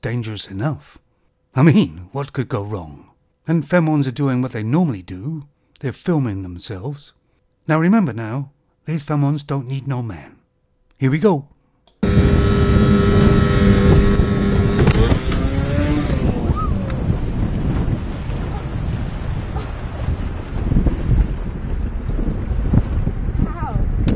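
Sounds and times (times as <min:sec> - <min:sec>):
speech: 0:00.0 - 0:10.4, 0:11.0 - 0:12.3
motorboat engine droning and revving: 0:12.0 - 0:20.9
gusty wind buffeting the microphone over water: 0:12.0 - 0:24.1.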